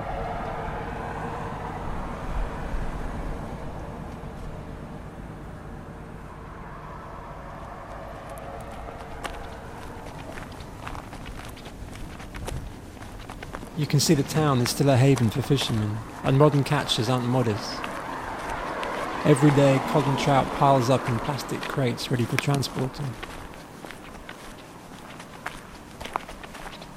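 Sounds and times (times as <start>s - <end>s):
outdoor rumble: 0.0s - 26.9s
footsteps on a hard road in a fishing town: 3.6s - 5.1s, 7.2s - 26.9s
scuffs and clicks: 7.6s - 26.9s
speech: 13.8s - 17.9s, 19.2s - 23.3s.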